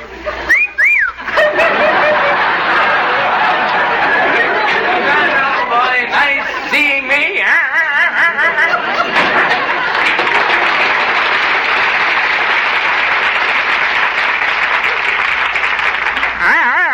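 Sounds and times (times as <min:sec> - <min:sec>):
crowd chatter: 0:00.0 - 0:11.3
laughter: 0:00.0 - 0:16.9
person whistling a warbling tune: 0:00.5 - 0:01.2.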